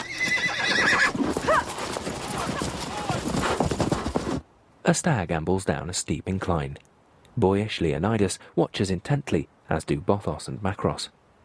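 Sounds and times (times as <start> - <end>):
horse neighing: 0.0 - 4.2
hooves clip-clopping across snow as riders set off: 0.0 - 4.4
speech: 4.9 - 11.2.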